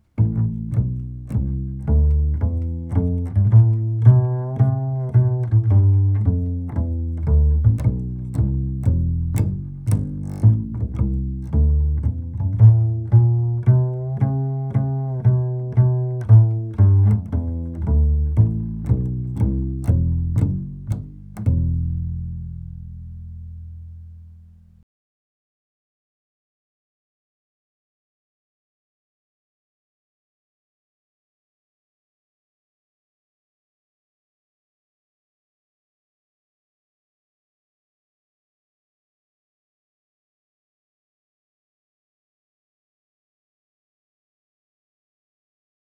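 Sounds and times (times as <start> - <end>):
walking bass through all strings: 0.1 - 24.8.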